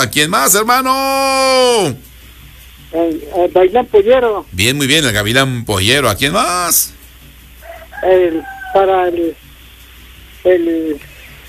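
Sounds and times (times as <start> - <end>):
speech: 0.0 - 2.1, 2.9 - 7.0, 8.0 - 9.4, 10.4 - 11.1
rooster crowing: 7.6 - 9.2.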